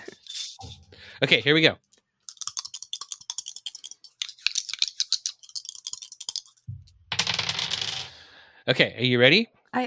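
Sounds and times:
speech: 1.2s - 1.9s, 8.7s - 9.8s
d8 and d4 dice rattling together in a hand or container: 2.3s - 8.2s.

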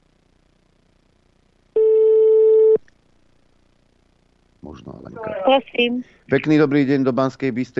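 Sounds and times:
telephone ringback tone while dialing out: 1.8s - 2.8s
speech: 4.7s - 7.7s.

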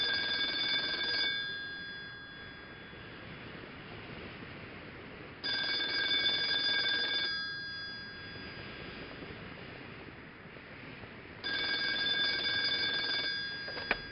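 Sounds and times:
telephone ringing in bright buzzy bursts: 0.0s - 3.4s, 5.4s - 9.1s, 11.4s - 14.1s.

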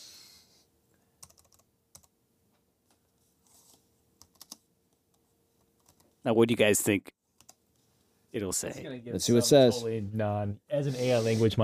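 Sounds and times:
typing on a computer keyboard: 1.2s - 2.1s, 4.2s - 4.6s, 5.8s - 6.1s
speech: 6.2s - 7.2s, 8.3s - 11.6s.

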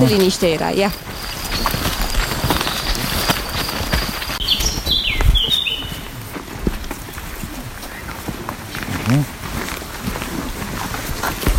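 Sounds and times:
speech: 0.0s - 1.8s, 9.1s - 9.4s
bird chirping in a forest: 0.0s - 6.2s
several people's footsteps crunching and rustling through a forest: 0.0s - 11.5s.

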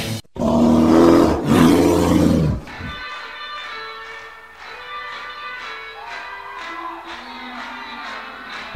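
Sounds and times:
animal roaring: 0.3s - 2.9s.

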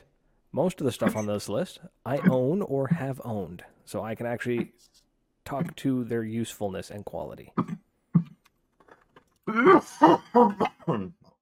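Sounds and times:
speech: 0.5s - 7.8s, 9.5s - 11.2s
person in a loud coughing fit: 9.5s - 11.2s.

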